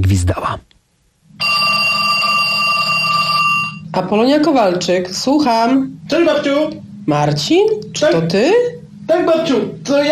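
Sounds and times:
speech: 0:00.0 - 0:00.6, 0:04.0 - 0:10.1
telephone ringing in a radio drama: 0:01.4 - 0:04.0.

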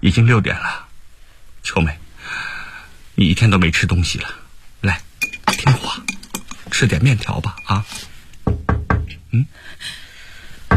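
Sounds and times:
speech: 0:00.0 - 0:00.8, 0:01.6 - 0:02.5, 0:03.2 - 0:06.0, 0:06.8 - 0:08.1, 0:09.3 - 0:10.0
loud quick raps on a door: 0:08.4 - 0:09.2.

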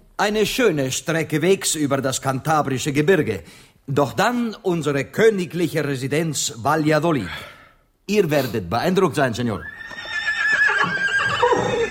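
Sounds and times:
speech: 0:00.2 - 0:09.9
horse neighing: 0:09.6 - 0:11.8.

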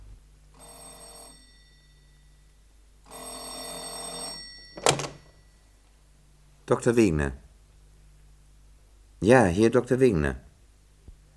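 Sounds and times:
telephone bell ringing at night: 0:00.6 - 0:05.7
speech: 0:06.7 - 0:07.4, 0:09.2 - 0:10.4.

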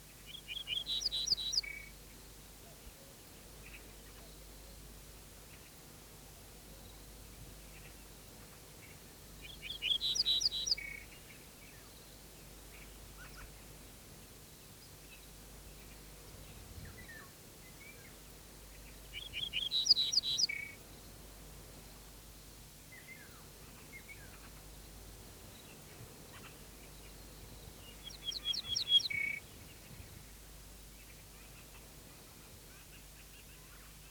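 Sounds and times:
soft hiss: 0:00.0 - 0:34.0
garden bunting singing from a thistle stalk in a steppe gully: 0:19.2 - 0:20.8, 0:26.3 - 0:29.4.

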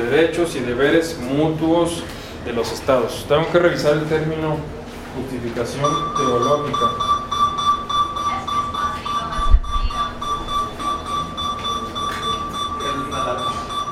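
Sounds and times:
speech: 0:00.0 - 0:07.1
alarm, possibly a seismic alarm, with steady electronic tone: 0:05.8 - 0:13.9.

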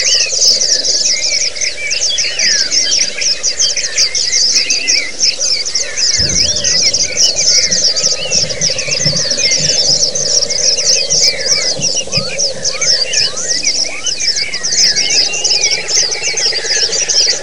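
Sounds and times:
several white-eyes singing together in a twittering chorus: 0:00.0 - 0:17.4
low rumble: 0:05.2 - 0:17.4.

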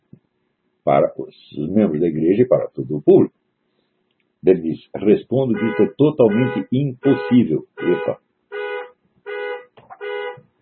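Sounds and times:
speech: 0:00.9 - 0:03.4, 0:04.4 - 0:08.2
car horn honking: 0:05.5 - 0:10.4.

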